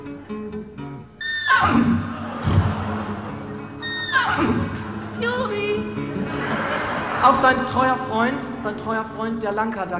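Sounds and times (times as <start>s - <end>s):
horse neighing on the banks of the Grand Canyon: 1.2s - 2.6s, 3.8s - 4.8s
laughter: 1.9s - 5.2s, 6.0s - 9.4s
speech: 7.2s - 9.9s.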